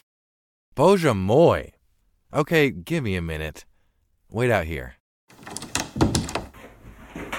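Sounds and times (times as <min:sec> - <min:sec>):
speech: 0:00.8 - 0:03.7, 0:04.3 - 0:05.0
door opening: 0:05.3 - 0:06.5.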